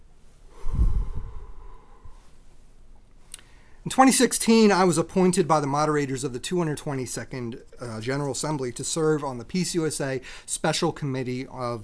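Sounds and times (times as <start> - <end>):
deep breath drawn in slowly through the nose: 0.5 - 2.5
speech: 3.9 - 11.8.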